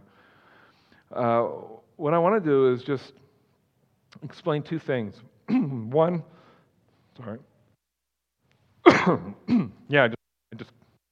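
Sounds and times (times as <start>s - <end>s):
speech: 1.1s - 3.2s, 4.2s - 6.4s, 7.2s - 7.5s, 9.0s - 10.8s
harsh coughs into microphone: 5.5s - 5.8s, 8.8s - 9.9s
throat clearing into microphone: 5.5s - 5.8s, 8.9s - 9.8s.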